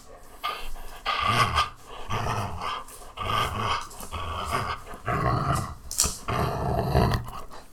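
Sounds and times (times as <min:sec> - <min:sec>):
angry dog: 0:00.0 - 0:07.7.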